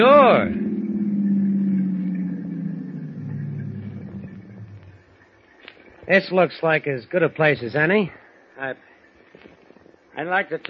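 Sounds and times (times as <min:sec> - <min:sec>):
speech: 0:00.0 - 0:00.7, 0:06.1 - 0:09.5, 0:10.2 - 0:10.6
car engine slowing to a stop and idling: 0:00.0 - 0:05.2.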